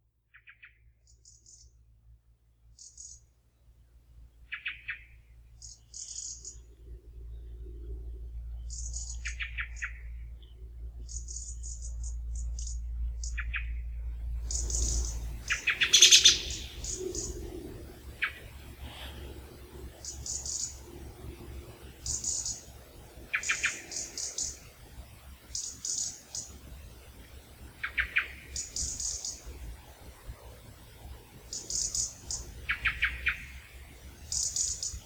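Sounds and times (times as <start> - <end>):
European robin call notes: 0.3 - 1.8, 2.7 - 3.3, 4.3 - 35.0
blackbird call notes: 4.5 - 24.7, 25.4 - 26.6, 27.7 - 29.6, 31.5 - 35.0.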